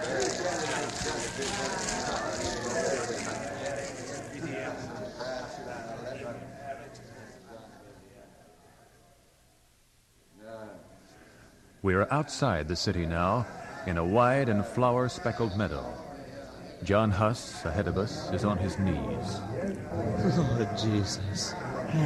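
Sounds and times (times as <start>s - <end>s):
crackling flames of burning books: 0.0s - 5.7s
crowd murmuring: 0.0s - 7.8s, 11.9s - 22.0s
speech: 11.8s - 16.1s, 16.8s - 22.0s
laughter: 17.8s - 22.0s.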